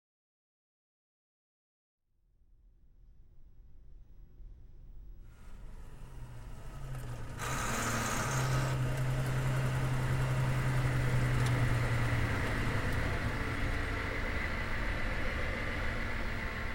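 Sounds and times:
vehicle engine idling: 4.9 - 16.7.

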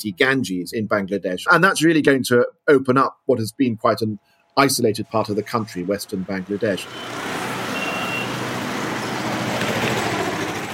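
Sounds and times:
speech: 0.0 - 7.4
congested city traffic engines rumbling in Dhaka Bangladesh: 3.8 - 10.7
high-pitched beep: 7.8 - 8.3.

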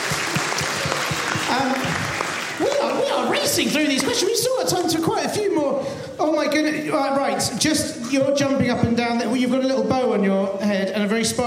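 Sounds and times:
audience applauding: 0.0 - 4.2
speech: 3.2 - 11.4.

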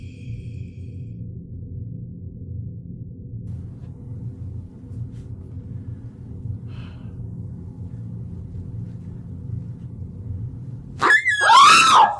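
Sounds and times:
quiet low rumble: 0.0 - 11.3
loud startled high-pitched scream: 11.0 - 12.1.

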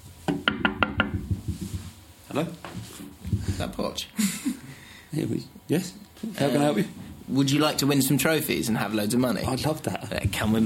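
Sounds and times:
knocking on a door: 0.3 - 1.9, 3.3 - 3.8
speech: 2.4 - 4.4, 5.1 - 10.6.

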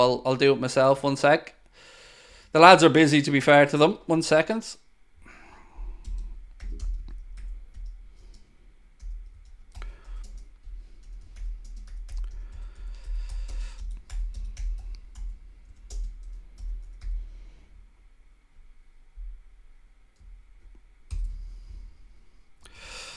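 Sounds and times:
speech: 0.0 - 1.9, 2.5 - 4.8
typing on a computer keyboard: 5.8 - 17.2, 21.1 - 21.4.

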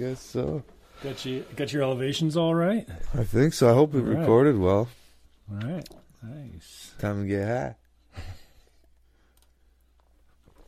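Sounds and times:
speech: 0.0 - 8.4
steady low electrical hum: 0.0 - 10.6
computer mouse clicking: 9.3 - 9.6.

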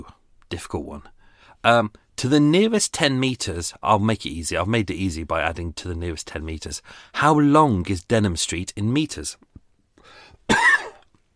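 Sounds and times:
speech: 0.0 - 10.6
sharp cough: 10.5 - 11.1.

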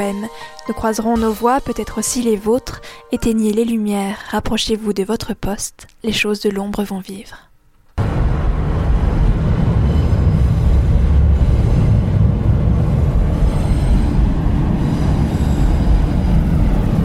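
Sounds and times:
speech: 0.0 - 7.5
passenger train passing over a bridge: 8.0 - 17.0
faint metallic squeals of train wheels on rails: 9.8 - 12.0, 13.1 - 16.3.

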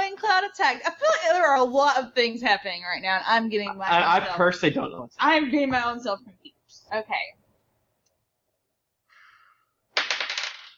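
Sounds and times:
speech: 0.4 - 7.4
dice rattling: 10.0 - 10.7.

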